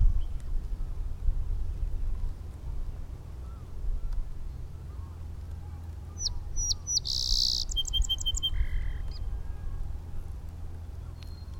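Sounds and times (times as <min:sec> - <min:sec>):
steady low rumbling background noise: 0:00.0 - 0:11.5
song sparrow song: 0:03.4 - 0:11.5.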